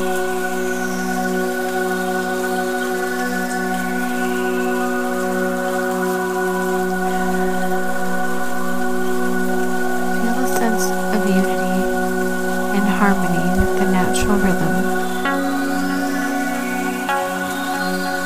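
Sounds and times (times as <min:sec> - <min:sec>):
gentle summer rain falling: 0:00.0 - 0:18.2
humming tonal drone: 0:00.0 - 0:18.2.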